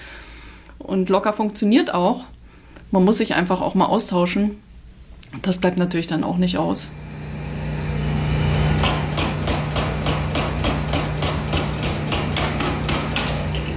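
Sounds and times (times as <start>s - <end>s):
speech: 0.8s - 4.7s, 5.3s - 7.1s
low hum of machinery: 2.3s - 13.7s
rapid metallic hammering at a street construction site: 8.3s - 13.7s.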